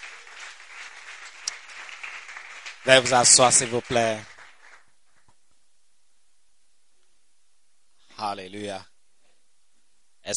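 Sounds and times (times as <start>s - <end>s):
church congregation applauding at a year-end Sunday service: 0.0s - 5.3s
speech: 2.8s - 4.3s, 8.4s - 8.9s.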